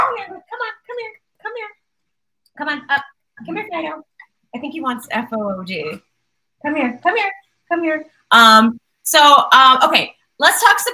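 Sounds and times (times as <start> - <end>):
dog barking and whimpering: 0.0 - 0.4
speech: 2.6 - 10.9.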